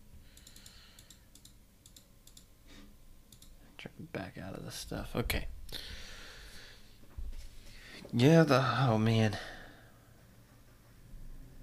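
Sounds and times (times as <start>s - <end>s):
steady low hum: 0.0s - 11.6s
rapid computer keyboard typing: 0.4s - 2.5s, 3.3s - 3.6s
speech: 4.0s - 5.6s, 8.1s - 9.5s.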